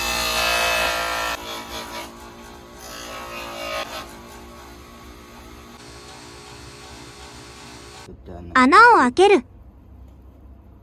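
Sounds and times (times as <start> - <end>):
power tool grinding a part flat: 0.0 - 8.1
speech: 8.4 - 9.5.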